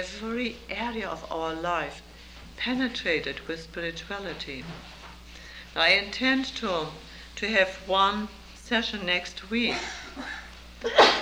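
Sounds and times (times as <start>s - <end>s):
speech: 0.0s - 5.0s, 5.8s - 11.1s
person sneezing: 10.2s - 11.1s.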